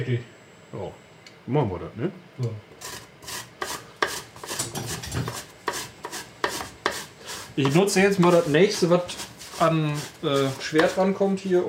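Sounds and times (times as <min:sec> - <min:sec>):
speech: 0:00.0 - 0:03.0, 0:07.6 - 0:11.6
apple being finely grated by hand for bread: 0:02.8 - 0:11.6.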